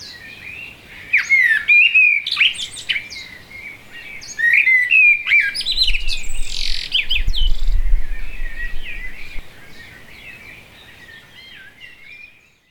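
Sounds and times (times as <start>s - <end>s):
blackbird song: 0.0s - 12.6s
low rumbling noise: 5.5s - 9.9s.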